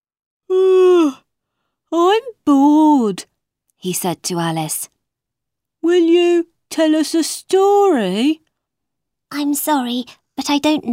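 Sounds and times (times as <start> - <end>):
drawn-out voiced yawn acted out by a person: 0.5 - 1.2
speech: 1.9 - 5.0, 5.8 - 8.4, 9.3 - 10.9.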